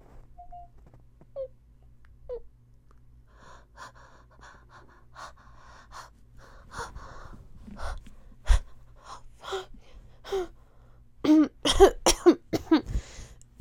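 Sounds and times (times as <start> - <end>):
gasping breaths: 3.3 - 10.9
raspy coughing fit: 11.3 - 13.0.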